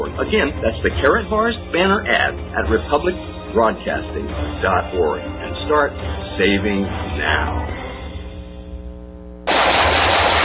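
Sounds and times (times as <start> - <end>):
speech: 0.0 - 7.8
automatic gunfire: 9.5 - 10.4.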